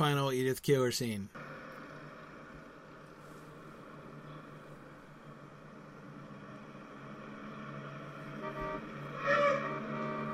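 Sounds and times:
speech: 0.0s - 1.4s
car engine drone: 1.3s - 10.3s
car tires squealing as car screeches to a halt: 3.4s - 10.3s.

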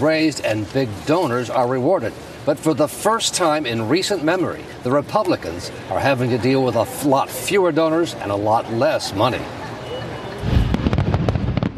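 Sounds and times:
speech: 0.0s - 9.6s
fireworks exploding at a political convention: 10.4s - 11.7s.

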